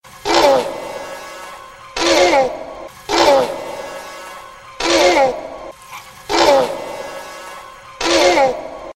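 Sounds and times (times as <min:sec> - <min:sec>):
velociraptor calls: 0:00.2 - 0:00.9, 0:02.0 - 0:03.8, 0:04.8 - 0:07.1.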